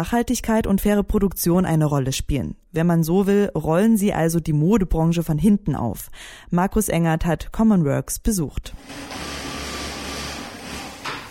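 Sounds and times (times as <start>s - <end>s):
speech: 0.0s - 9.4s
sewing machines whirring and rattling in a clothing production workshop in Berlin: 8.8s - 11.2s.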